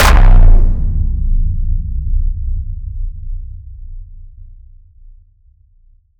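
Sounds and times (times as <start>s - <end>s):
impact: 0.0s - 2.4s.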